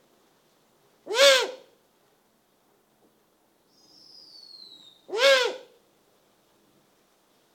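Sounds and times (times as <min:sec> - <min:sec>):
Eurasian eagle-owl giving loud rasping hoarse calls: 0:01.1 - 0:01.7, 0:04.4 - 0:05.7.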